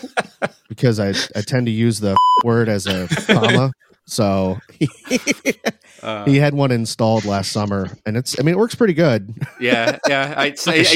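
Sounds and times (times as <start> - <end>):
laughter: 0.0 - 1.9, 2.8 - 6.4, 7.0 - 8.0, 9.3 - 10.9
speech: 0.0 - 10.9
censor bleep over a swear word: 2.2 - 2.5.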